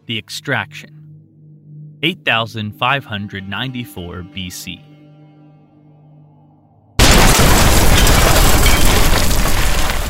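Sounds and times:
speech: 0.1 - 1.0, 2.0 - 4.9
loud explosion: 7.0 - 10.0
roaring rumble with crackling debris: 7.0 - 10.0.

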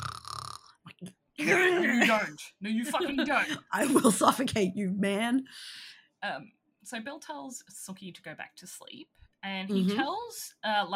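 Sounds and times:
person imitating loud snore: 0.0 - 0.8
throaty snorts: 0.0 - 0.9
speech: 1.4 - 10.9.

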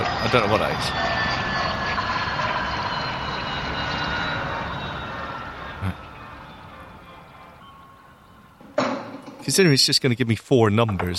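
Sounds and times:
helicopter flying overhead: 0.0 - 9.7
speech: 0.3 - 1.2, 9.5 - 11.1
thump: 8.7 - 9.4.

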